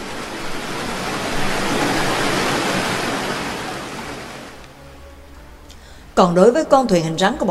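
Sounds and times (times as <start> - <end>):
rough chaotic sea waves surging and churning: 0.0 - 5.1
speech: 6.2 - 7.4.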